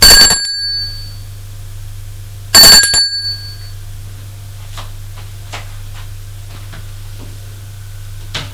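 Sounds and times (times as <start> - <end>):
apartment doorbell ringing: 0.0 - 1.2, 2.6 - 3.8
steady low electrical hum: 0.0 - 8.5.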